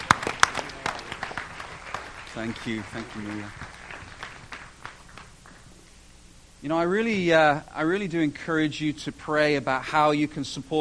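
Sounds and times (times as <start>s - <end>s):
audience applauding: 0.0s - 5.8s
speech: 2.4s - 3.8s, 6.6s - 10.8s.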